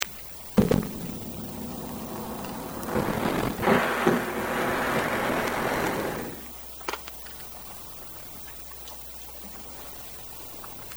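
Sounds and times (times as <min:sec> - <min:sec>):
male harbor seal: 0:00.6 - 0:06.5.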